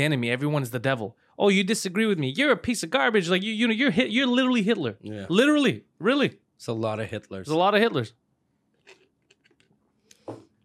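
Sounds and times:
speech: 0.0s - 8.2s
person sipping an iced mochaccino: 8.8s - 10.5s.

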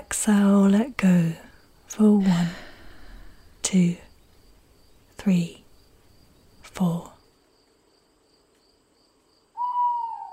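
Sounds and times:
faint continuous insect drone: 0.0s - 10.3s
speech: 0.2s - 2.6s, 3.7s - 4.0s, 5.2s - 5.6s, 6.8s - 7.1s
owl hooting: 9.5s - 10.3s.

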